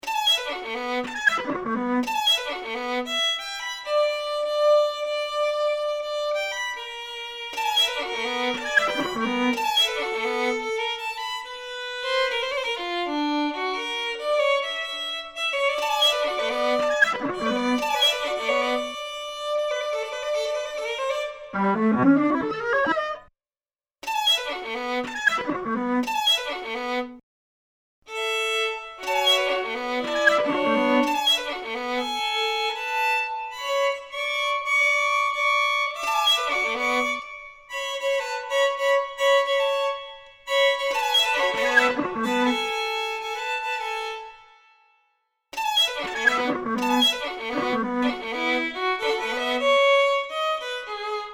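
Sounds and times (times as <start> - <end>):
violin: 0.0 - 23.3, 24.0 - 27.2, 28.1 - 45.0, 45.6 - 51.3
electronics: 21.6 - 23.3.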